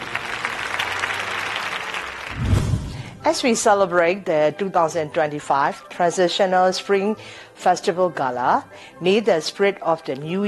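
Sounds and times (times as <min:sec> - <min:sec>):
audience applause after a singing performance at a Spring Festival gala: 0:00.0 - 0:03.0
speech: 0:03.2 - 0:10.4.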